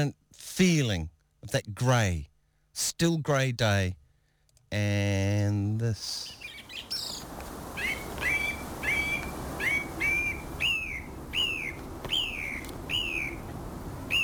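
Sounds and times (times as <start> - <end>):
speech: 0.0 - 4.0, 4.7 - 6.4
thrush singing whistled phrases: 6.0 - 14.2.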